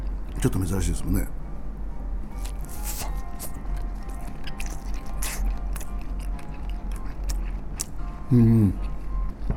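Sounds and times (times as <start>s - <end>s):
steady low hum: 0.0s - 9.5s
speech: 0.4s - 1.4s, 8.3s - 8.9s
person chewing crunchy pen shell clam: 2.3s - 9.0s.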